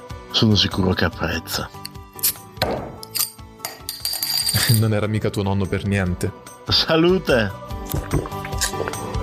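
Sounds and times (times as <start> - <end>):
speech: 0.4 - 2.8, 4.7 - 9.0
beer bottle cap coming off with a dull knock: 1.9 - 4.8, 7.8 - 9.1
glassy clinks of a beer bottle being opened: 3.0 - 4.8.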